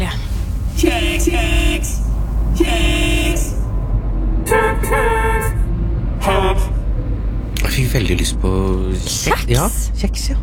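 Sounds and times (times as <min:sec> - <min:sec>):
idling car engines in a traffic jam: 0:00.0 - 0:10.4
speech: 0:01.2 - 0:03.6, 0:07.8 - 0:10.4
horn-like tonal notes: 0:02.6 - 0:03.7, 0:04.5 - 0:06.9.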